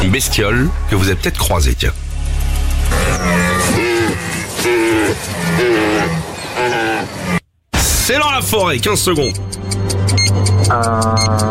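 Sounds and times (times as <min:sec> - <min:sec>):
speech: 0:00.1 - 0:02.1, 0:03.2 - 0:03.8, 0:04.6 - 0:07.4, 0:08.1 - 0:11.5
red deer stag bellowing during rut: 0:02.9 - 0:07.4.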